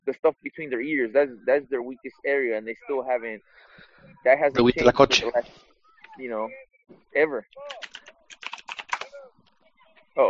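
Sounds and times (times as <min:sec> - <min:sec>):
speech: 0:00.1 - 0:07.8
typewriter-like typing clatter: 0:07.7 - 0:09.1.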